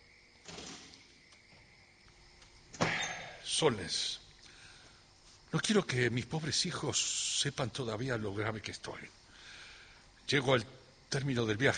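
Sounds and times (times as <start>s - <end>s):
door closing quietly: 0.4s - 1.1s, 2.7s - 3.4s
speech: 3.5s - 4.2s, 5.5s - 9.2s, 10.3s - 11.7s.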